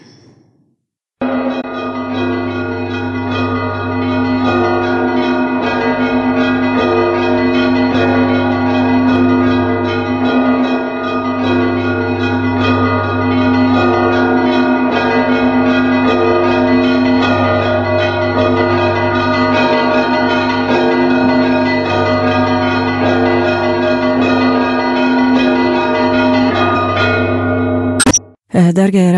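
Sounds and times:
Orthodox church bells ringing for Easter: 1.2 - 28.0.

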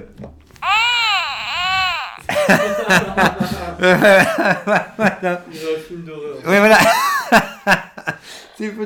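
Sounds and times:
baby crying: 0.6 - 2.4
laughter: 0.6 - 5.4, 6.5 - 8.2
speech: 2.5 - 7.9, 8.6 - 8.8.

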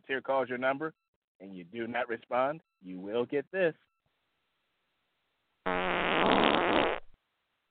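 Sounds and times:
speech: 0.1 - 3.9
loud buzzy fart sound effect: 5.7 - 7.1.

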